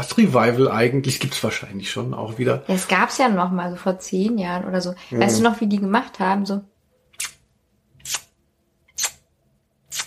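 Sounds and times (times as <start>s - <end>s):
speech: 0.1s - 7.3s
voice imitating a watch ticking with kiss-like lip smacks: 7.1s - 7.4s, 8.0s - 9.2s.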